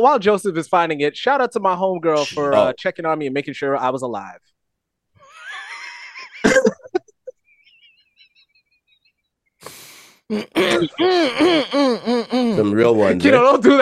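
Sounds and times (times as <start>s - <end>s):
speech: 0.0s - 4.5s, 10.3s - 13.8s
squeaky warbling vocal noises: 2.2s - 2.7s, 10.3s - 13.4s
laughter: 5.3s - 8.8s, 10.4s - 13.8s
throat clearing: 10.4s - 12.5s.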